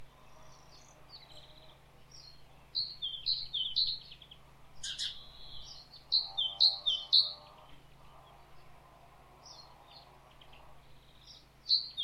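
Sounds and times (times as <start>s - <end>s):
great tit calling: 0.6s - 7.5s.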